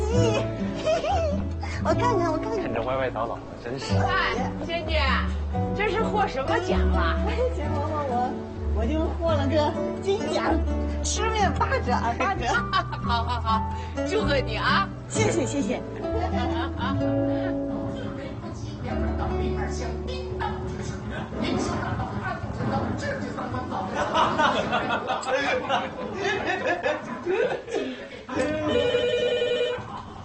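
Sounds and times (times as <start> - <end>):
several people chattering and laughing at a New Year gathering: 0.0 - 30.2
speech: 1.8 - 17.3
telephone ringing with electronic warble during a New Year gathering: 28.5 - 30.1.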